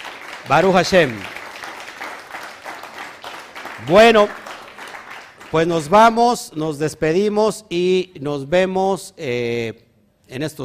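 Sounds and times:
crowd applauding in praise of God: 0:00.0 - 0:06.2
speech: 0:00.4 - 0:01.4, 0:03.8 - 0:04.4, 0:05.5 - 0:10.6.

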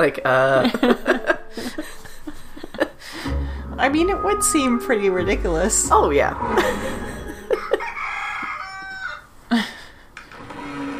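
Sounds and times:
speech: 0:00.0 - 0:02.0, 0:03.8 - 0:07.0
laughter: 0:00.6 - 0:03.3, 0:06.5 - 0:08.1
fowl clucking and squawking: 0:06.5 - 0:09.3
rooster crowing: 0:07.4 - 0:09.3.

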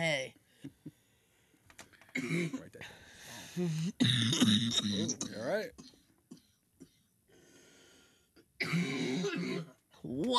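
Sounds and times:
person coughing: 0:02.2 - 0:02.8, 0:04.0 - 0:05.9, 0:08.6 - 0:09.7
speech: 0:02.2 - 0:03.0, 0:03.6 - 0:06.0, 0:08.6 - 0:10.3
rough breathy rush: 0:02.8 - 0:03.6.

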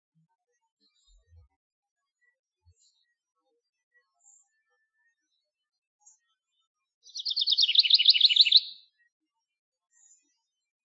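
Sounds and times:
male house wren singing: 0:07.0 - 0:08.8.

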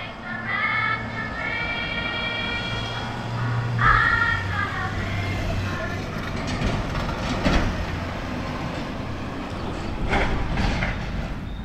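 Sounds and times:
delivery truck driving past in a parking lot: 0:00.0 - 0:11.6
clanks and squeaks from a delivery truck: 0:05.6 - 0:08.0, 0:08.7 - 0:11.6.

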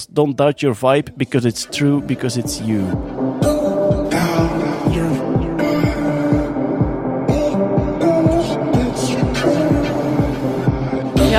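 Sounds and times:
speech: 0:00.0 - 0:03.5
song with throbbing low electronic pulse: 0:01.7 - 0:11.3.

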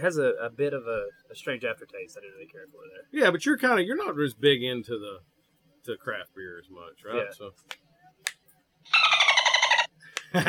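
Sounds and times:
speech: 0:00.0 - 0:07.9
high rapidly chattering dolphin squeaks as a censor sound effect: 0:08.9 - 0:09.9.

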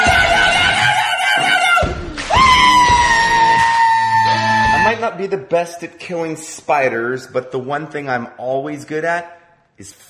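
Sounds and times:
person screaming in fright: 0:00.2 - 0:05.0
speech: 0:05.3 - 0:10.0.

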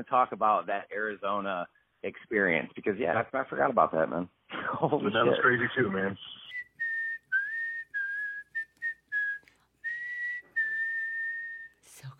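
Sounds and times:
speech: 0:00.0 - 0:06.5
laughter: 0:04.5 - 0:06.0
lone human whistling a slow eerie tune: 0:06.5 - 0:11.8.

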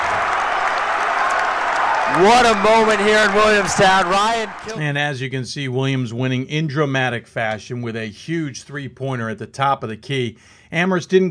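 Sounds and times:
basketball crowd cheering and applauding as fans storm the court: 0:00.0 - 0:04.8
speech: 0:02.1 - 0:11.2.

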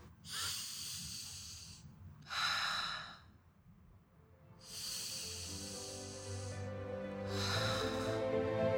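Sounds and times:
slow deep breaths in and out: 0:00.1 - 0:03.4, 0:04.6 - 0:08.6.

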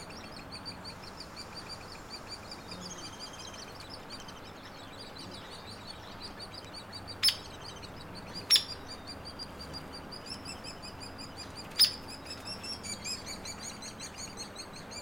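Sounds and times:
hairy woodpecker nestlings chattering in Acadia National Park: 0:00.0 - 0:15.0
hairy woodpecker sharp peek calls: 0:00.0 - 0:15.0.

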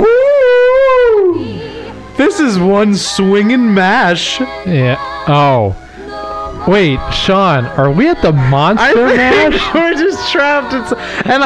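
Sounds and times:
person imitating a wolf howl: 0:00.0 - 0:01.8
speech: 0:02.4 - 0:05.8, 0:06.7 - 0:11.4
laughter: 0:08.8 - 0:11.4.

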